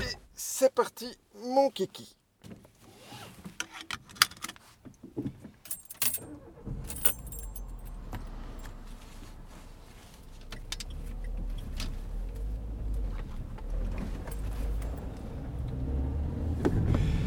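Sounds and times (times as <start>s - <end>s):
speech: 0.6s - 2.6s
car engine starting and rumbling as the car pulls away: 5.6s - 17.2s
keys jangling: 5.7s - 6.3s, 6.9s - 7.9s, 14.2s - 15.0s.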